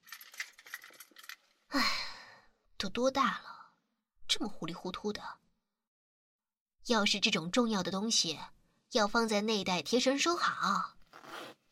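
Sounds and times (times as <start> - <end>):
keys jangling: 0.0 - 1.5
speech: 2.8 - 3.5, 4.3 - 5.4, 6.9 - 11.0.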